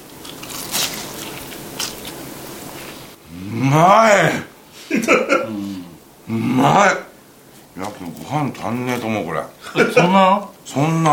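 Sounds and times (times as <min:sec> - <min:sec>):
teeth biting into a crispy fried pork cutlet: 0:00.0 - 0:03.2
soft chewing: 0:00.0 - 0:03.4, 0:04.5 - 0:10.9
speech: 0:03.5 - 0:07.0, 0:07.8 - 0:11.1
laughter: 0:04.8 - 0:06.7, 0:09.6 - 0:10.5.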